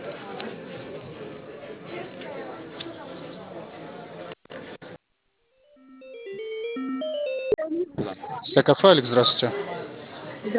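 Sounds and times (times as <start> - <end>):
busy noise over a phone line: 0.0 - 5.1, 5.7 - 10.5
melodic phone ringing tone during call transfer to a café branch: 5.6 - 7.9
speech: 8.6 - 9.8.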